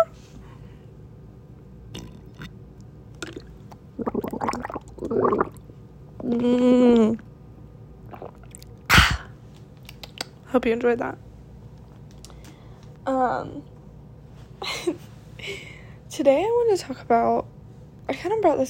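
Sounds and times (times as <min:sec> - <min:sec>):
person sipping water: 0:01.9 - 0:02.6, 0:03.2 - 0:05.6, 0:08.0 - 0:08.8
swallowing: 0:01.9 - 0:07.3, 0:08.0 - 0:09.3
speech: 0:06.3 - 0:06.9, 0:10.6 - 0:11.3, 0:13.3 - 0:13.7, 0:16.2 - 0:17.4, 0:18.2 - 0:18.6.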